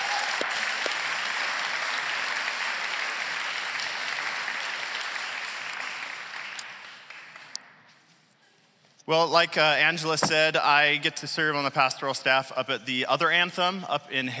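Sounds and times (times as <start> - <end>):
applause from a sizable audience: 0.0 - 7.6
speech: 9.1 - 14.3.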